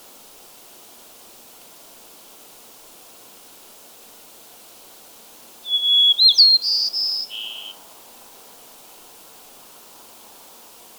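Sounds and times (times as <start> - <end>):
white-crowned sparrow gambelii singing whistle and buzzy trill: 5.7 - 7.8.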